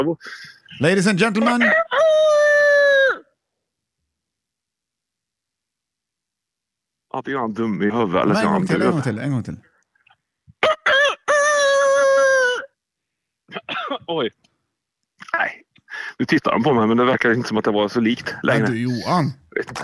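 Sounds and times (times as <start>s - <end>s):
speech: 0.0s - 2.3s, 7.2s - 9.7s, 13.6s - 14.5s, 16.2s - 19.8s
man imitating a rooster crowing: 1.4s - 3.3s, 10.6s - 12.8s.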